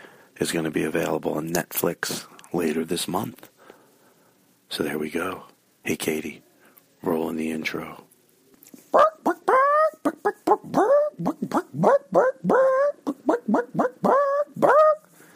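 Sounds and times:
speech: 0.4 - 3.5, 4.7 - 8.0, 10.0 - 12.8
person imitating a dog barking: 8.9 - 15.1.

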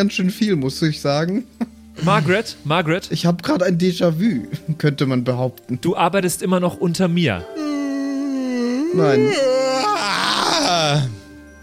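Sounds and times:
speech: 0.0 - 7.6, 8.9 - 9.6, 10.8 - 11.1
person screaming: 7.6 - 11.2.

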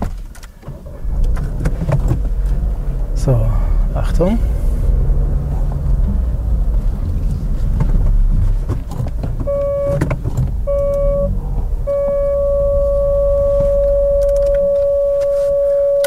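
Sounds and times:
low car engine rumble: 0.0 - 16.0
speech: 3.2 - 4.6
car parking sensor beeping inside the vehicle: 9.4 - 16.0.

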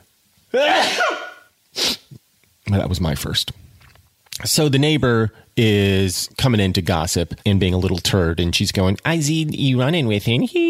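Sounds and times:
speech: 0.5 - 1.2, 2.7 - 3.6, 4.4 - 10.6
loud sneeze: 0.5 - 2.2.

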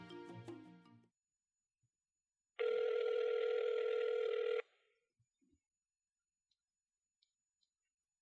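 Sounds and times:
phone dialing tones: 2.6 - 4.7.

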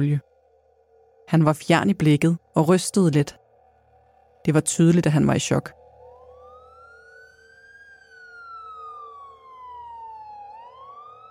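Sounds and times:
speech: 0.0 - 0.3, 1.3 - 3.4, 4.4 - 5.8
ambulance sirens wailing as ambulances arrive at a house in Kalbakken Norway: 5.7 - 11.2.

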